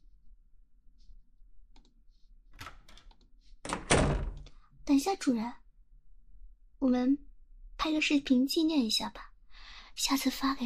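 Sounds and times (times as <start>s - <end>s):
door handle and latch clicking and rattling: 2.6s - 4.5s
speech: 4.9s - 5.6s, 6.8s - 9.3s, 10.0s - 10.6s.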